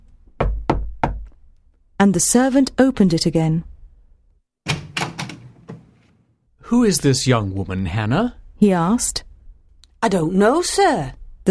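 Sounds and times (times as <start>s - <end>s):
firm knocks on a wooden door: 0.4s - 1.3s
speech: 2.0s - 3.7s, 6.7s - 9.3s, 10.0s - 11.2s.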